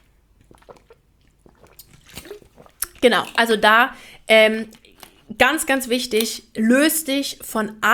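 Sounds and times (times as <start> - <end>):
swallow: 0.0 - 3.4
person sipping water: 0.0 - 5.3
speech: 3.0 - 4.8, 5.4 - 7.9.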